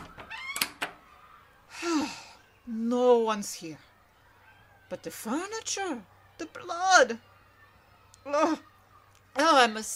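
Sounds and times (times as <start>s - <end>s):
closet door creaking open: 0.0s - 1.0s
closet door latch clicking: 0.0s - 1.0s
speech: 2.9s - 3.9s, 4.9s - 7.3s, 8.2s - 8.7s, 9.4s - 9.9s.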